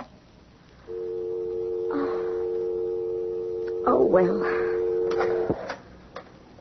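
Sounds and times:
telephone dial tone: 0.9s - 5.6s
speech: 4.1s - 4.7s
telephone hung up click: 5.1s - 5.8s.

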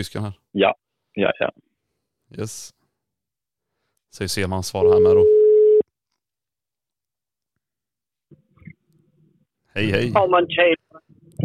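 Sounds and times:
speech: 0.0s - 1.6s, 2.3s - 2.8s, 4.1s - 5.4s, 9.8s - 10.8s
telephone call tone while dialing out: 4.8s - 5.8s.

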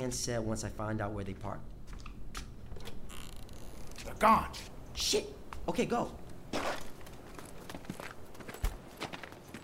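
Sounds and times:
speech: 0.0s - 1.8s, 4.1s - 6.7s
footsteps thudding: 6.5s - 9.6s.

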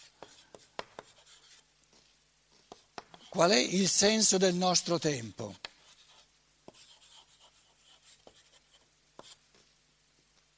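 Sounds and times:
writing on a board during a lecture: 0.0s - 3.4s, 5.5s - 9.7s
speech: 3.3s - 5.6s.

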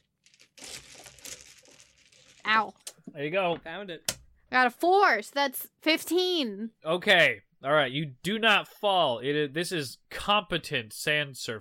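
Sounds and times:
hand rummaging through a bag of dice: 0.0s - 2.5s
speech: 2.5s - 11.5s.

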